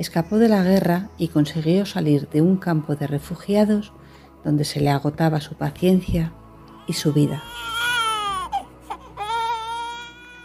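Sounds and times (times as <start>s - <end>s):
speech: 0.0s - 7.8s
baby crying: 6.7s - 10.4s.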